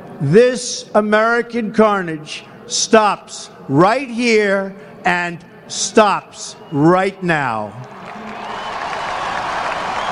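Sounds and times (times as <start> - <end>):
speech: 0.2 - 7.9
faint cheering murmur of inauguration crowd: 6.4 - 10.1
large crowd applauding at inauguration speech at the Capitol: 7.8 - 10.1.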